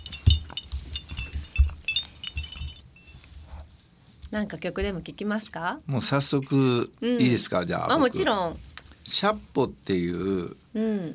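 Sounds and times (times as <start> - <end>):
glasses clinking together in a toast: 0.0 - 3.3
handling noise: 0.0 - 4.0
speech: 4.3 - 11.1.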